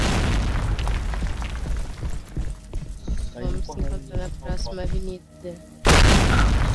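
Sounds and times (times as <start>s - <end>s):
bomb trap explosion: 0.0s - 2.2s, 5.9s - 6.7s
speech: 3.7s - 5.7s.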